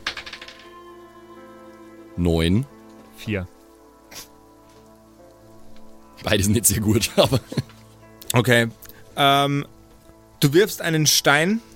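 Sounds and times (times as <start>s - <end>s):
dice tumbling on a table: 0.0s - 0.7s
speech: 2.2s - 3.6s, 6.2s - 7.7s, 8.4s - 9.8s, 10.4s - 11.7s
laughter: 6.7s - 7.8s.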